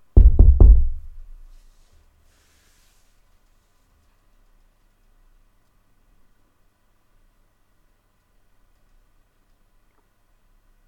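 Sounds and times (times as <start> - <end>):
firm knocking on a wooden door: 0.0 - 1.2.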